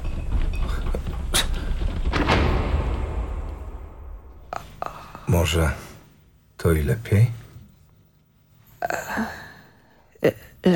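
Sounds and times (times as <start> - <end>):
door banging and rattling: 0.0 - 4.5
speech: 5.4 - 5.8, 6.6 - 7.4, 10.2 - 10.7.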